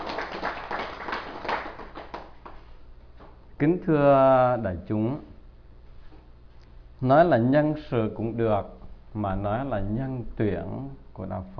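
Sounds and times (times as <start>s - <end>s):
audience applause: 0.0s - 2.6s
speech: 3.6s - 5.3s, 7.0s - 11.5s.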